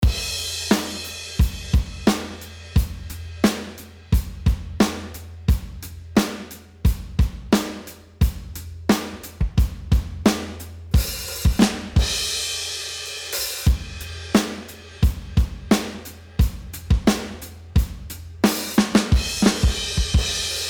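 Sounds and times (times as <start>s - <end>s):
drums with tape saturation: 0.0s - 20.6s.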